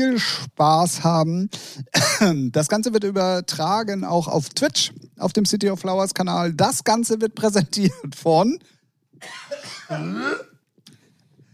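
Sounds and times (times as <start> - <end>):
speech: 0.0 - 10.5
harsh raspy cough: 1.9 - 2.4, 9.2 - 10.6.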